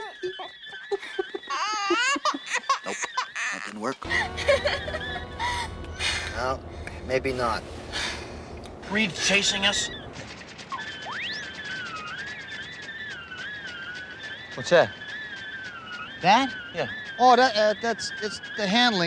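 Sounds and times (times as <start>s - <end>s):
laughter: 0.3s - 9.9s
rough long warbling: 4.0s - 19.0s.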